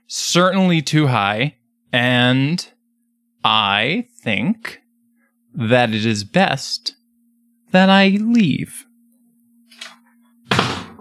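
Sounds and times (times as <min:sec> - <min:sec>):
steady low hum: 0:00.0 - 0:10.6
speech: 0:00.1 - 0:02.7, 0:03.4 - 0:04.8, 0:05.6 - 0:07.0, 0:07.7 - 0:08.9
apartment door shutting with a loud thud: 0:10.5 - 0:10.9.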